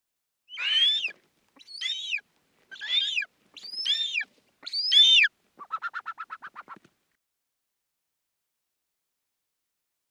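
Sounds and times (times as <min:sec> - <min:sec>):
Black-chested buzzard-eagle harsh arched screams: 0:00.5 - 0:06.6.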